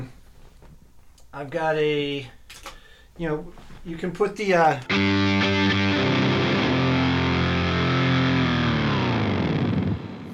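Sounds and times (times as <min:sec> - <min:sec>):
speech: 0:01.4 - 0:05.3
distorted electric guitar through amp-modeling processor emulating an amplifier, pitch-diving chord: 0:04.9 - 0:10.3.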